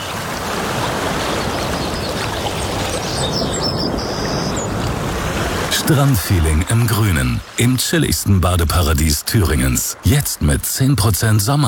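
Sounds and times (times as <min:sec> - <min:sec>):
water rushing and splashing at a thermal spa in summer: 0:00.0 - 0:11.6
faint high bird chirps: 0:02.9 - 0:04.8
speech: 0:05.9 - 0:11.6.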